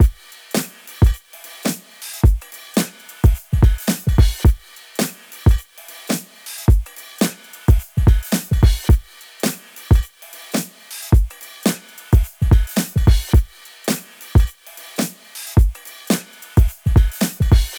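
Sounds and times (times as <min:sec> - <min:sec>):
looped drum break: 0:00.0 - 0:17.7.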